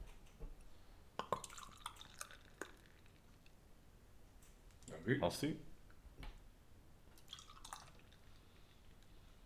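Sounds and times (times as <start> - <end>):
rum barrel aged beer poured into a glass: 1.2 - 3.5, 7.1 - 9.4
speech: 5.0 - 5.7.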